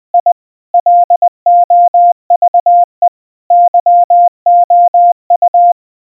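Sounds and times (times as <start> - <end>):
Morse code beeps: 0.2 - 5.8.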